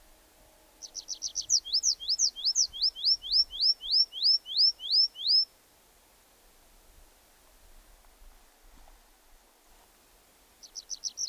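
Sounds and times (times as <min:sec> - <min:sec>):
tree pipit singing: 0:00.8 - 0:05.5, 0:10.6 - 0:11.2.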